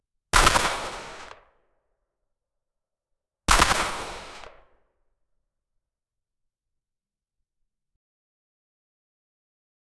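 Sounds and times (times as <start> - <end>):
sawed-off shotgun: 0.4 - 1.5, 3.5 - 4.8.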